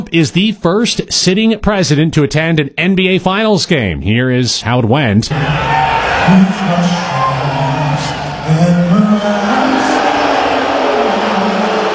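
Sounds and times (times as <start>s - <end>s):
speech: 0.1s - 7.3s
large arena crowd booing: 5.3s - 11.9s.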